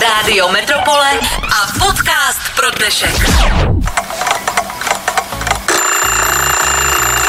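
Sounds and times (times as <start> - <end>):
speech: 0.1 - 4.4
loud metallic alarm clock ringing: 5.7 - 7.2.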